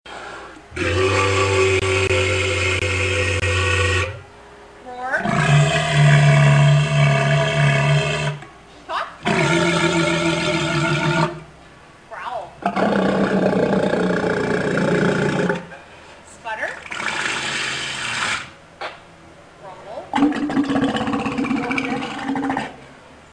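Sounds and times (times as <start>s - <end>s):
walrus roaring hoarsely: 0.7s - 4.3s, 5.2s - 8.4s, 9.2s - 11.5s, 12.6s - 15.7s, 16.9s - 18.6s, 20.2s - 22.8s.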